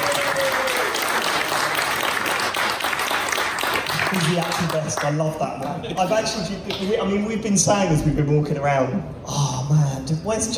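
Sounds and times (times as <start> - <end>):
live audience cheering: 0.0 - 4.5
live audience applause: 0.0 - 5.2
speech: 4.1 - 10.5.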